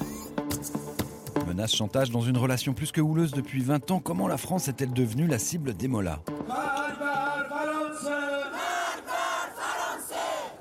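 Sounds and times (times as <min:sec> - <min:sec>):
speech: 0:01.5 - 0:06.8
large crowd of protesters chanting slogans in unison: 0:07.1 - 0:10.5.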